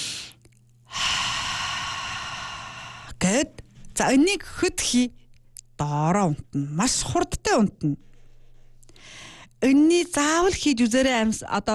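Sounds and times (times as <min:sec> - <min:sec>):
brief airy breath: 0:00.0 - 0:03.2
slow deliberate exhalation during a breathing exercise for sleep: 0:00.0 - 0:03.2
speech: 0:03.3 - 0:05.2, 0:05.8 - 0:08.1, 0:09.6 - 0:11.7.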